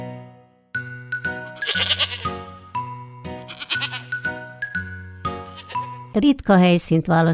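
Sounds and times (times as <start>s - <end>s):
bouncy, evenly stepping tune: 0.8s - 6.1s
goats bleating at a goat farm: 1.5s - 2.4s, 3.5s - 4.3s, 5.3s - 6.0s
speech: 6.1s - 7.3s.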